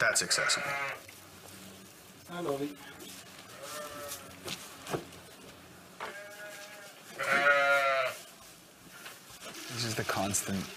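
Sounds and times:
speech: 0.0s - 1.2s, 2.3s - 3.2s, 9.8s - 10.7s
sheep bleating: 0.1s - 1.1s, 3.5s - 4.4s, 6.0s - 8.2s.

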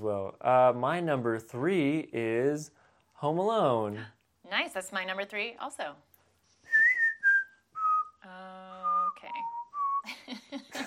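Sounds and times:
speech: 0.0s - 6.1s
person whistling a short melody: 6.6s - 8.2s, 8.8s - 10.1s.

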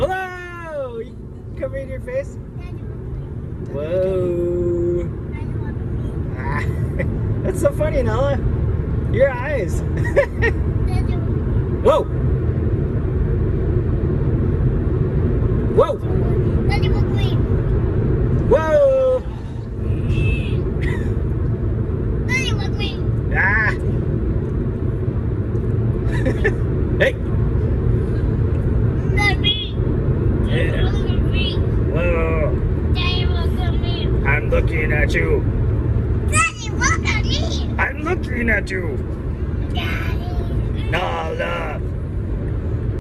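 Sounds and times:
road rumble inside a moving car: 0.0s - 43.0s
speech: 1.6s - 2.8s, 3.7s - 4.5s, 7.5s - 10.8s, 11.8s - 12.2s, 38.6s - 39.2s
young child talking excitedly: 2.6s - 3.0s, 5.3s - 6.1s, 10.8s - 11.4s, 16.2s - 17.4s, 22.3s - 23.1s, 29.0s - 29.8s, 30.6s - 31.7s, 33.0s - 34.2s, 36.3s - 37.8s, 39.7s - 41.3s.

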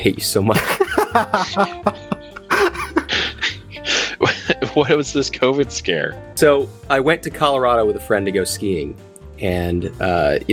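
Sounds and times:
speech: 0.0s - 2.0s, 4.2s - 10.5s
laughter: 0.5s - 5.1s
person with a cold coughing roughly: 2.5s - 3.6s.

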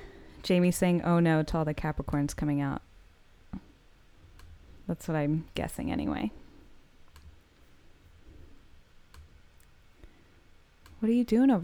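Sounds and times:
low hum: 0.0s - 11.6s
speech: 0.4s - 2.9s, 4.9s - 6.4s, 11.0s - 11.6s
computer clicks pasting a photo: 7.1s - 7.4s.

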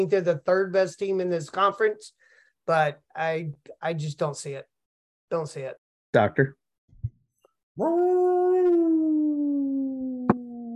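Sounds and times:
speech: 0.0s - 4.7s, 5.3s - 6.6s, 7.8s - 8.9s
person howling in imitation of a lone wolf: 7.8s - 10.7s.

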